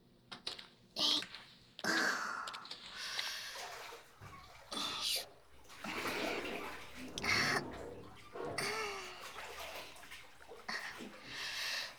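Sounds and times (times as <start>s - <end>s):
water sloshing and splashing as someone climbs into a full bathtub: 1.3s - 11.9s
steady low wash of bathtub water: 3.6s - 11.9s.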